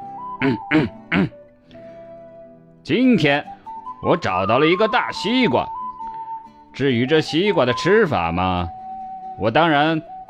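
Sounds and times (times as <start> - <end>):
speech: 0.4 - 1.4, 2.8 - 5.8, 6.8 - 8.8, 9.4 - 10.1
storyteller clearing throat for a monkey character: 0.4 - 1.4.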